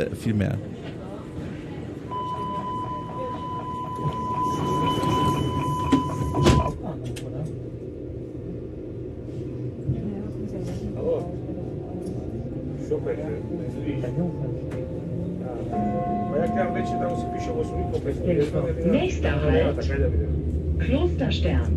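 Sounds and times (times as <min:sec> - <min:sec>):
speech: 0:00.0 - 0:00.7, 0:16.8 - 0:21.7
subway train car rumbling: 0:00.0 - 0:21.7
subway train warning tones: 0:00.0 - 0:21.7
subway train doors slamming shut: 0:04.5 - 0:06.8.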